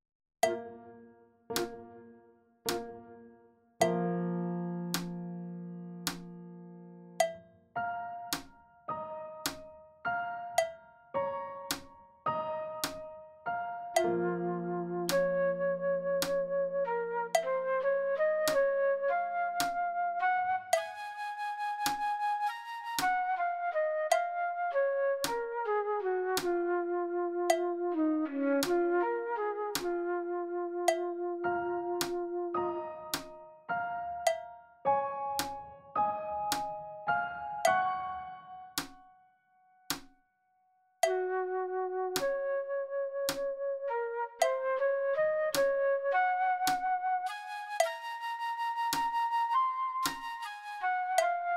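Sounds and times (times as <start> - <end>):
piano: 0.4 - 51.5
flute: 13.8 - 33.5, 41.0 - 51.5.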